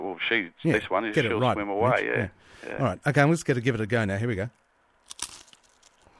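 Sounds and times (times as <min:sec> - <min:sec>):
speech: 0:00.1 - 0:05.2
biscuit being bitten with a crisp crunch: 0:05.1 - 0:05.6
softer crumbly chewing: 0:05.1 - 0:06.1.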